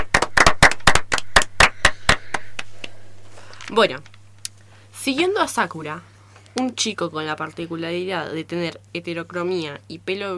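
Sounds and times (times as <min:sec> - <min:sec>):
hands clapping in a steady rhythm: 0:00.0 - 0:03.0
speech: 0:03.7 - 0:04.1, 0:05.0 - 0:10.3.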